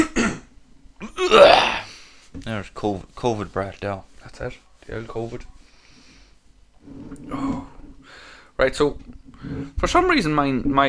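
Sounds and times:
person clearing throat: 0.0 - 1.9
person coughing harshly: 0.0 - 1.9
speech: 1.3 - 1.6, 2.4 - 5.6, 8.6 - 10.8.

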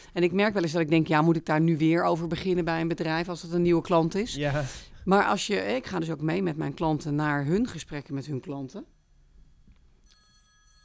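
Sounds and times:
speech: 0.1 - 8.9
mobile phone ringing: 10.0 - 10.8.

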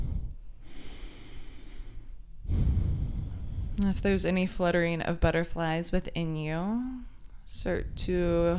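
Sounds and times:
louder rougher exhale during a guided breathing exercise: 0.0 - 3.8
slow deep breath drawn in during a guided breathing exercise: 0.0 - 3.8
speech: 3.8 - 8.5.

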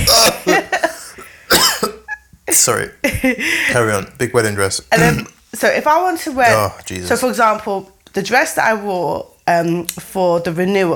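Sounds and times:
man coughing: 0.0 - 2.9, 5.0 - 5.3
speech: 2.6 - 10.9.

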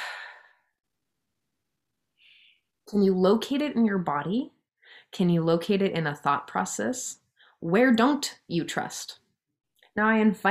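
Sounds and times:
deep breath in during a guided self-trust exercise: 0.0 - 0.7, 2.2 - 2.7
speech: 2.9 - 9.2, 10.0 - 10.5.

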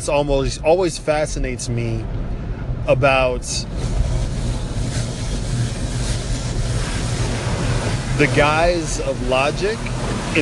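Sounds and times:
speech: 0.0 - 4.1, 8.2 - 10.3
mechanical rumble of an automatic car wash: 0.0 - 10.3
water spraying inside an automatic car wash: 3.6 - 10.3.

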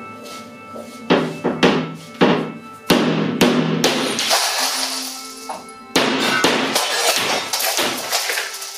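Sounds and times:
hammer striking coated glass pane: 1.1 - 8.7
glass pane cracking and shattering: 3.9 - 5.6, 6.2 - 8.7
glass debris rattling: 3.9 - 8.7.

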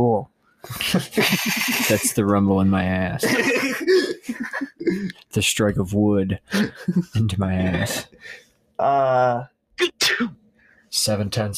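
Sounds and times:
speech: 0.0 - 11.5
laughter: 0.7 - 2.2, 3.2 - 5.1, 6.5 - 8.1
sneeze: 9.9 - 10.4.

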